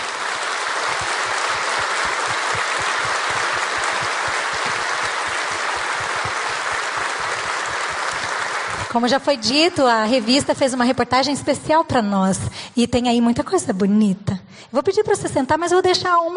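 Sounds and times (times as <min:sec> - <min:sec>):
crowd clapping: 0:00.0 - 0:11.6
speech: 0:08.9 - 0:16.3.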